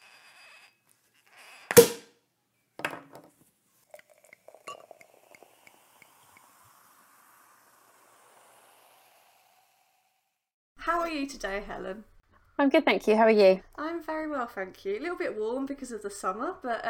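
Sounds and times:
sparkling wine cork popping: 0:03.9 - 0:08.3
sparkling wine fizzing as it is poured: 0:03.9 - 0:10.4
glasses clinking: 0:04.2 - 0:05.2
speech: 0:10.8 - 0:16.8.

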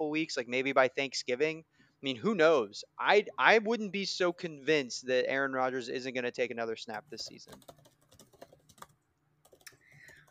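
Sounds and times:
speech: 0:00.1 - 0:07.8
typing on a computer keyboard: 0:07.0 - 0:10.3.

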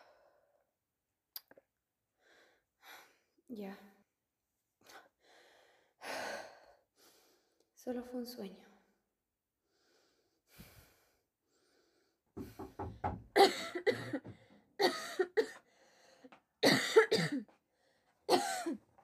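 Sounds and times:
speech: 0:03.5 - 0:04.0, 0:07.8 - 0:08.7
person coughing with harsh hacking bursts: 0:13.4 - 0:15.6, 0:16.6 - 0:17.5, 0:18.3 - 0:18.8.

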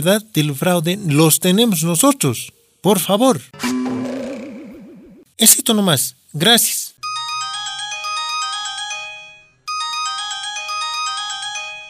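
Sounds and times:
speech: 0:00.0 - 0:04.0, 0:05.4 - 0:06.8
phone ringtone for an incoming call: 0:07.0 - 0:11.8.

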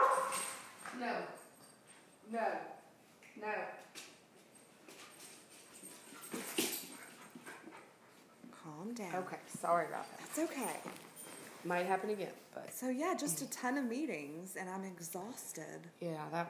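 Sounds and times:
dog barking in short bursts: 0:00.0 - 0:00.5
speech: 0:01.0 - 0:01.4, 0:02.2 - 0:02.8, 0:03.4 - 0:04.0, 0:08.6 - 0:16.4.

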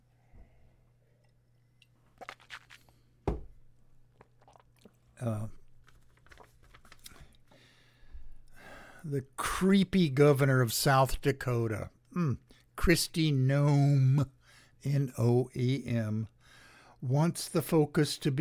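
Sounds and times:
person sipping a drink with wet mouth clicks and slurps: 0:01.0 - 0:03.1, 0:04.1 - 0:05.1
gulping sounds: 0:04.2 - 0:05.0
speech: 0:05.2 - 0:05.6, 0:09.0 - 0:16.3, 0:17.0 - 0:18.3.

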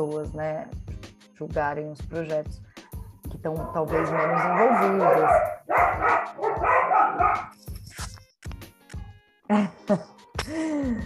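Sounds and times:
speech: 0:00.0 - 0:00.8, 0:01.4 - 0:02.7, 0:03.4 - 0:07.7, 0:09.5 - 0:11.0
dog barking: 0:03.6 - 0:07.5.

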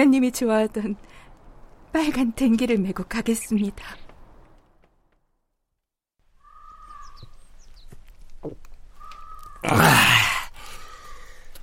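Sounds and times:
speech: 0:00.0 - 0:01.2, 0:01.9 - 0:04.0, 0:08.4 - 0:08.6, 0:09.6 - 0:10.2
faint outdoor background: 0:00.0 - 0:11.6
crow cawing loudly in the morning: 0:06.4 - 0:07.3, 0:08.9 - 0:09.9, 0:10.7 - 0:11.4
bird chirps: 0:06.4 - 0:09.6.

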